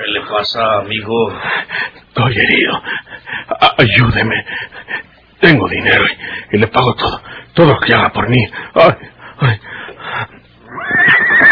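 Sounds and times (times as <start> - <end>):
speech: 0.1 - 3.0, 3.6 - 4.7, 5.4 - 9.6
horse letting out a loud shrill whinny: 10.6 - 11.5.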